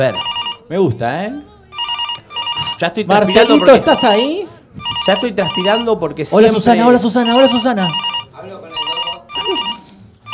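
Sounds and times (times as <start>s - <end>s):
telephone ringing with bright buzzy electronic tone during outgoing call: 0.0s - 0.7s, 1.6s - 10.3s
speech: 0.0s - 1.5s, 2.8s - 8.6s
faint voices murmuring: 0.0s - 10.3s.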